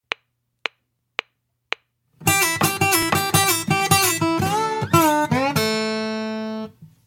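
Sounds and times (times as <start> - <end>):
slide guitar: 2.2 - 6.8.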